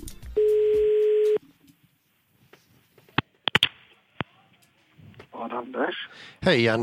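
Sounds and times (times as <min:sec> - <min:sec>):
quiet phone line noise: 0:00.4 - 0:01.4
telephone ringback tone of an outgoing call: 0:00.4 - 0:01.4
sharp clicks: 0:03.2 - 0:04.7
speech: 0:05.6 - 0:06.8.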